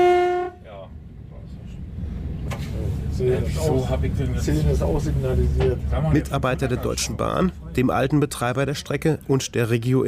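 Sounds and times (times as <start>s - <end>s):
passenger railcar horn blast: 0.0s - 0.7s
passenger railcar departing on the Joachimsthal–Templin line: 0.0s - 8.8s
speech: 3.2s - 10.0s.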